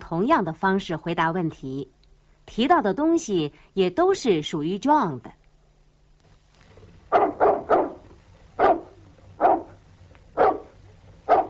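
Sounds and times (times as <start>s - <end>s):
speech: 0.1s - 5.4s
dog barking: 7.1s - 11.4s.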